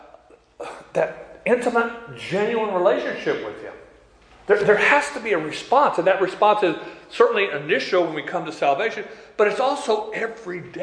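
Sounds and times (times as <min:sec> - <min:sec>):
person sneezing: 0:00.2 - 0:01.1
speech: 0:01.0 - 0:03.9, 0:04.5 - 0:10.8
quiet breathing: 0:06.8 - 0:07.2, 0:09.0 - 0:09.4.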